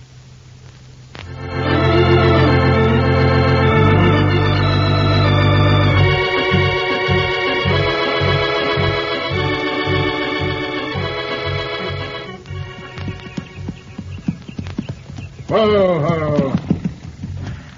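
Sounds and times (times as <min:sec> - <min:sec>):
music: 0:01.2 - 0:14.1
horse hooves clip-clopping as a rider comes up a trail: 0:12.4 - 0:17.7
person calling out: 0:15.5 - 0:16.6.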